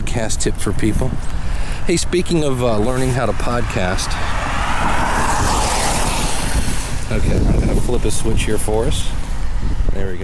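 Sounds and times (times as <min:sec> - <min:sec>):
wind buffeting an outdoor microphone: 0:00.0 - 0:10.2
speech: 0:00.2 - 0:04.4, 0:07.1 - 0:10.2.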